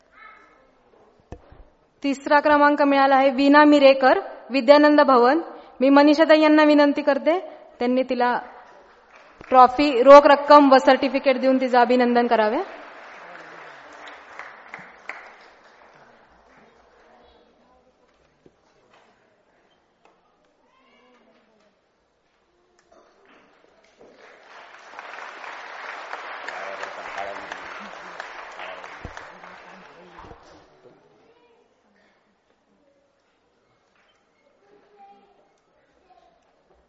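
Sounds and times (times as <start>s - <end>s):
speech: 2.0s - 8.5s, 9.5s - 12.8s
audience applause at a prize-giving ceremony: 8.7s - 9.6s, 12.4s - 17.2s, 24.0s - 30.7s.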